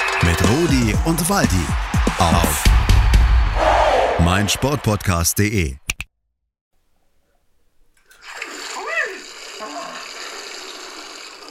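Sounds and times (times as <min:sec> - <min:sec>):
speech: 0:00.2 - 0:02.9, 0:04.2 - 0:05.8
shower water spraying: 0:08.1 - 0:11.5.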